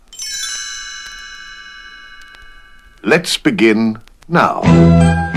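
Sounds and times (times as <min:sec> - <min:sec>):
bright cluster of chimes as a page-turn cue: 0:00.0 - 0:03.3
speech: 0:03.0 - 0:05.2.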